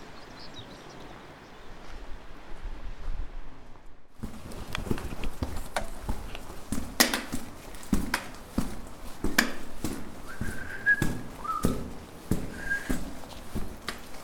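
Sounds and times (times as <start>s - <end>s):
hard footsteps echoing in a tunnel leading down to a beach at Porthgwara: 4.1s - 14.2s.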